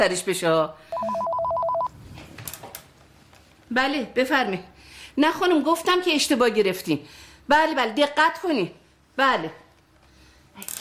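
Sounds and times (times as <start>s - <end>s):
speech: 0.0s - 1.4s, 3.7s - 9.6s, 10.6s - 10.7s
home telephone ringing with warbling electronic tones: 0.9s - 1.9s.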